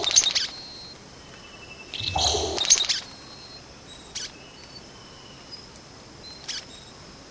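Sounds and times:
Vogelkop bowerbird uttering rough crackling bursts: 0.0s - 0.6s, 2.0s - 3.1s.

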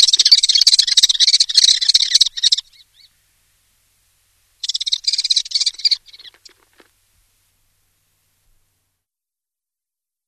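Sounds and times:
common kestrel calling in rapid harsh chattering bursts: 0.0s - 3.1s, 4.6s - 6.8s.

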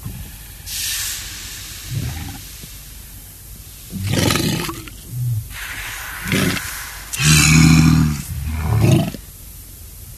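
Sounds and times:
walrus bellowing: 1.7s - 2.6s, 3.8s - 9.4s.

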